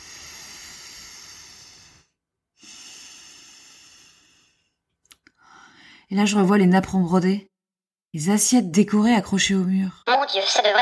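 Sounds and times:
slow deep breathing from a person lying under a blanket: 0:00.0 - 0:06.1
speech: 0:06.1 - 0:07.5, 0:08.1 - 0:10.7.

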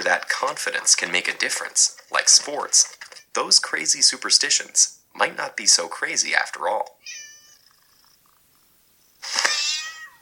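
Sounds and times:
speech: 0:00.1 - 0:07.2
cat meow sound effect: 0:07.0 - 0:07.8, 0:09.4 - 0:10.2.

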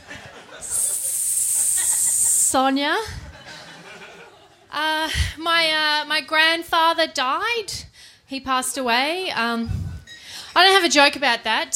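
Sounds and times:
laughter: 0:00.0 - 0:04.7
person voicing a sustained sharp snake-like hiss: 0:00.6 - 0:02.6
speech: 0:02.5 - 0:03.2, 0:04.7 - 0:09.8, 0:10.6 - 0:11.7.

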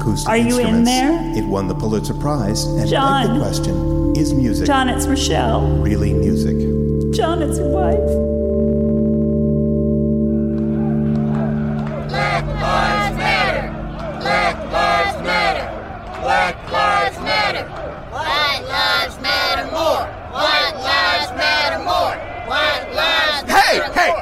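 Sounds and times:
low steady drone: 0:00.0 - 0:16.0
speech: 0:00.1 - 0:08.3
crowd of people chanting in rhythmic bursts: 0:10.7 - 0:24.2.

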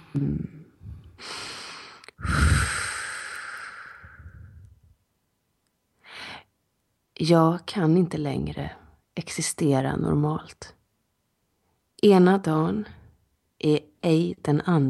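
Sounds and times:
speech: 0:00.2 - 0:00.6, 0:07.2 - 0:10.8, 0:12.0 - 0:13.0, 0:13.6 - 0:14.8
person breathing deeply before singing: 0:00.7 - 0:04.8.

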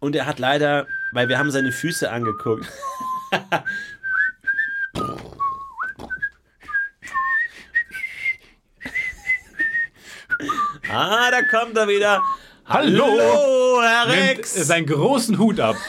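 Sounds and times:
speech: 0:00.0 - 0:04.0, 0:10.9 - 0:15.8
person whistling a lilting melody: 0:00.8 - 0:12.5.

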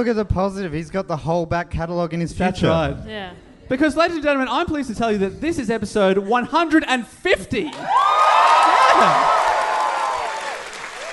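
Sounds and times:
speech: 0:00.0 - 0:08.4, 0:09.0 - 0:09.4
studio audience cheering and clapping with whoops and shouts: 0:07.7 - 0:11.1.

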